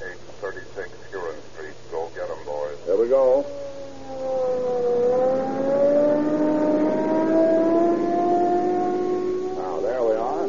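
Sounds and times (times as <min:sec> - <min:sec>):
police car siren-like whine: 0:02.9 - 0:10.4
police car engine accelerating hard on cracked gasoline: 0:03.4 - 0:10.4.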